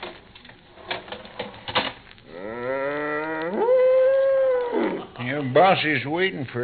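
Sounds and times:
milk cow mooing in a barn: 2.3s - 5.1s
speech: 5.4s - 6.6s.

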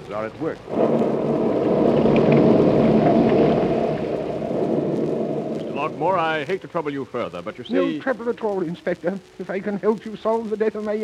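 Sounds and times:
deep continuous rumble of thunder outside a house: 0.0s - 6.9s
speech: 0.1s - 1.7s, 5.8s - 11.0s.

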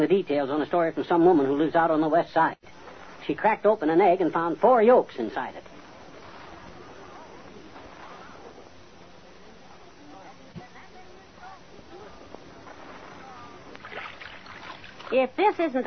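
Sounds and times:
speech: 0.0s - 5.7s, 15.1s - 15.8s
continuous wash of water: 2.8s - 10.0s, 11.5s - 15.8s
oars splashing as a boat is rowed through water: 5.7s - 9.2s, 12.2s - 15.7s.

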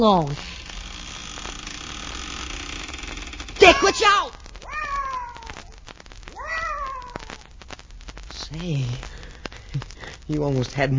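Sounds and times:
speech: 0.0s - 0.5s, 8.6s - 9.1s, 9.7s - 10.9s
faint noise: 0.0s - 10.9s
cat meowing: 3.6s - 7.4s.

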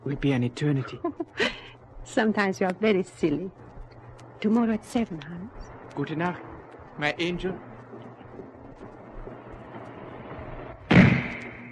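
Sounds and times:
low hum: 0.0s - 11.7s
speech: 0.1s - 3.6s, 4.4s - 7.7s
sniper rifle gunshot: 10.9s - 11.7s.

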